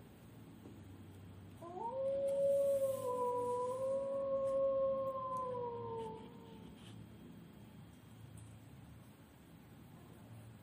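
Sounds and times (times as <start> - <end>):
wolf howling: 1.6 - 6.7.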